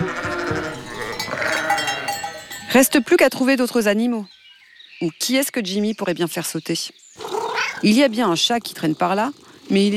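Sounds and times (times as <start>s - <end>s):
herd of goats bleating: 0.0s - 2.6s
speech: 2.7s - 4.3s, 5.0s - 9.9s.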